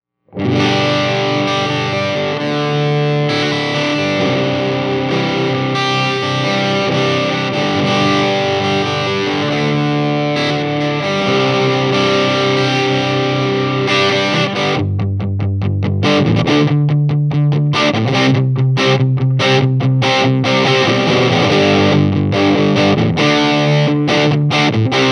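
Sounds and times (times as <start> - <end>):
electric guitar neck pickup through 12AT7 valve amplifier: 0.3 - 25.0.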